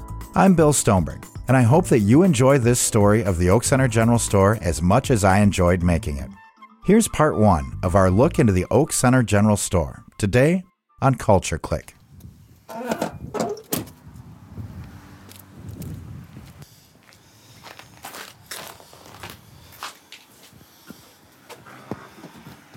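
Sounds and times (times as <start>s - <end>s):
speech: 0.4s - 12.0s
footsteps across a creaking wooden floor: 15.2s - 22.7s.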